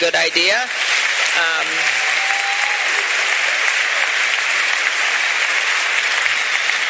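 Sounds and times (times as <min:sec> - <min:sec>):
speech: 0:00.0 - 0:02.1
large audience applause: 0:00.0 - 0:06.8
person cheering or whooping: 0:01.4 - 0:04.1.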